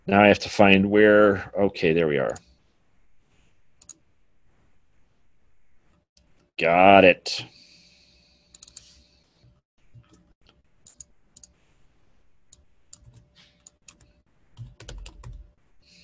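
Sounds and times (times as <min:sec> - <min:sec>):
speech: 0:00.1 - 0:02.5, 0:06.6 - 0:07.6
typing on a computer keyboard: 0:12.5 - 0:15.5.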